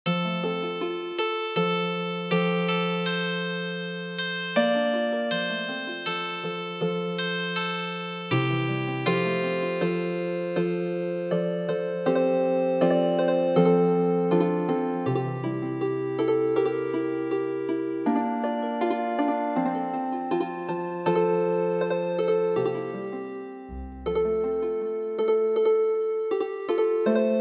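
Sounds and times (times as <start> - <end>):
healing harp lullaby: 0.1 - 27.4.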